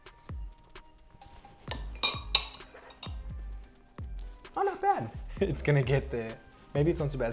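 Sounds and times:
metal spoons clinking together in a toast: 1.3 - 3.4
speech: 4.6 - 7.3.

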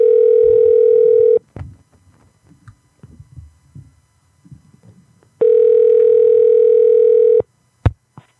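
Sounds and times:
telephone call ringing out: 0.0 - 1.4, 5.4 - 7.4.

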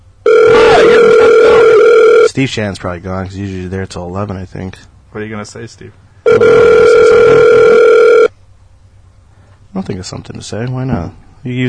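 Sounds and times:
electronic ringback tone of an outgoing telephone call: 0.2 - 2.3, 6.3 - 8.3
speech: 2.4 - 7.8, 9.8 - 11.6.

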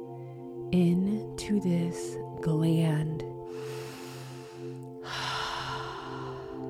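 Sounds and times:
speech: 0.7 - 3.8
deep inhale and exhale breathing during a guided circular-breathing exercise: 3.5 - 6.6.

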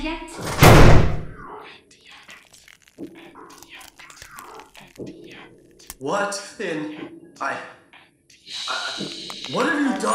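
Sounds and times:
speech: 0.0 - 0.6, 5.0 - 7.8, 9.5 - 10.1
axe smashing into a wooden door to break it down: 0.4 - 1.3.

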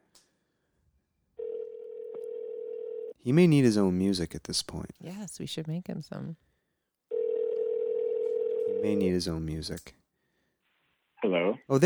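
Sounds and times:
steady telephone tone of a phone call being placed: 1.4 - 3.2, 7.1 - 8.9
speech: 3.2 - 6.5, 8.8 - 10.0, 11.2 - 11.8.

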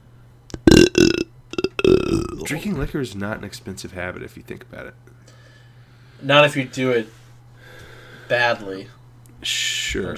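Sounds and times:
loud burp: 0.5 - 2.8
mouth clicks and smacks: 0.5 - 2.9
speech: 2.4 - 5.2, 6.2 - 7.2, 8.3 - 10.1.

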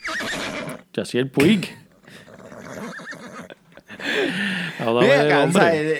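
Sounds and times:
horse neighing in a shrill wavering whinny: 0.0 - 4.4
faint noise: 0.0 - 5.9
speech: 1.0 - 1.8, 4.3 - 5.9
laughter: 1.4 - 5.9.

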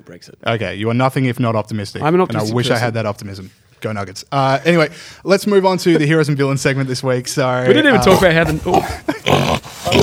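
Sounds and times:
speech: 0.0 - 10.0
pig oinking: 8.8 - 10.0.

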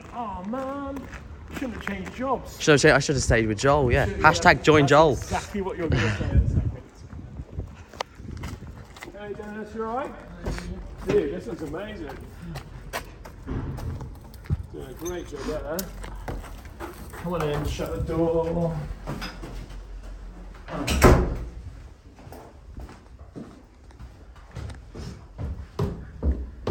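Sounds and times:
people chatting: 0.0 - 7.1, 9.1 - 12.6, 14.6 - 16.3, 17.1 - 19.0
speech: 0.2 - 6.7, 9.3 - 12.6, 15.0 - 16.3, 17.2 - 19.4, 20.7 - 21.1
door opening thud as someone enters: 13.2 - 16.8, 20.6 - 21.6.

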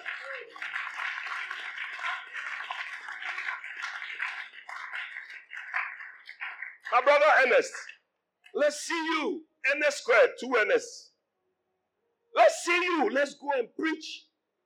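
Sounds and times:
crowd at a church gathering clapping: 0.0 - 8.0
speech: 6.9 - 7.9, 8.5 - 11.0, 12.6 - 14.3.

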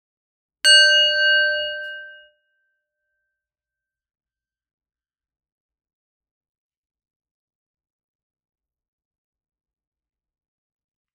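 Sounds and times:
meditation bell ringing: 0.7 - 2.3.

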